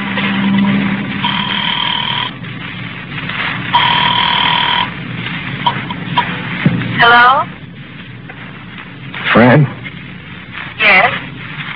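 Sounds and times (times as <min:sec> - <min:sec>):
phone booth telephone line low hum: 0:00.0 - 0:02.7, 0:03.6 - 0:06.4
steady telephone line noise: 0:00.0 - 0:11.7
electronic ringing heard through a phone booth earpiece: 0:00.2 - 0:02.4, 0:03.7 - 0:04.9.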